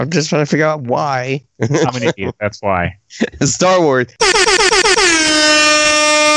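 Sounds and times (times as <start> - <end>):
laughter: 0.0 - 4.1
speech: 0.0 - 5.2
air horn blasts: 4.2 - 6.3.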